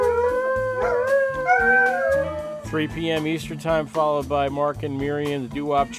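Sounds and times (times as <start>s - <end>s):
hound howling: 0.0s - 2.7s
low rhythmic musical backing: 0.0s - 5.9s
speech: 2.7s - 5.9s.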